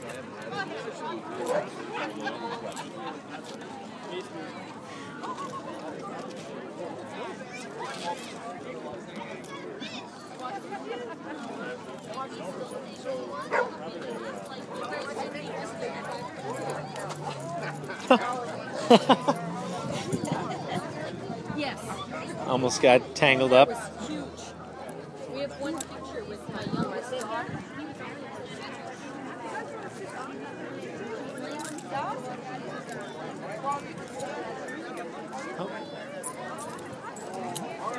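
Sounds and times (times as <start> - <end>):
busy outdoor crowd murmuring and chattering: 0.0 - 37.9
speech: 0.9 - 5.8, 12.3 - 16.7, 18.9 - 19.3, 22.6 - 24.0
laughter: 1.9 - 3.6, 16.3 - 22.5.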